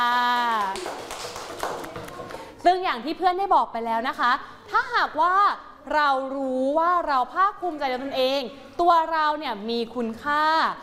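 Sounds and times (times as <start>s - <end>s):
applause for a student representative in a classroom: 0.3s - 2.5s
speech: 2.6s - 10.8s.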